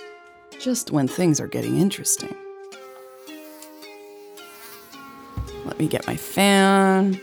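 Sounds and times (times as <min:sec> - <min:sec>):
speech: 0:00.6 - 0:02.5, 0:05.8 - 0:07.2
mosquito buzzing: 0:02.7 - 0:07.2.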